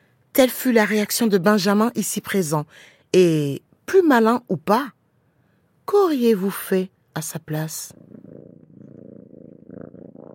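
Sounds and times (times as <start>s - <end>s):
speech: 0.4s - 5.0s, 5.9s - 8.2s
cat purring: 7.9s - 10.3s.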